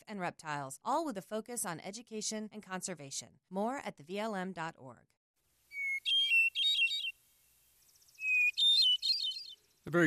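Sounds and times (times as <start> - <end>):
speech: 0.1 - 5.2, 9.8 - 10.0
timberdoodle chirping and twittering: 5.7 - 7.2, 7.8 - 10.0
faint rapid ticking notes of a timberdoodle: 5.7 - 10.0.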